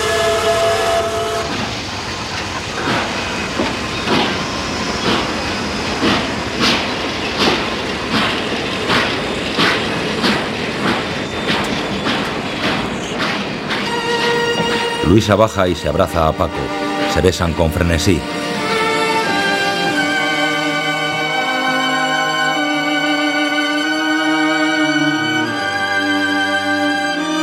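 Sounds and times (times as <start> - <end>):
brief tonal horn-like sound of a train: 0.0 - 1.7, 16.4 - 27.4
train pulling away rumbling: 0.0 - 27.4
train wheels clickety-clack over rail joints: 1.4 - 17.1
speech: 15.1 - 18.5.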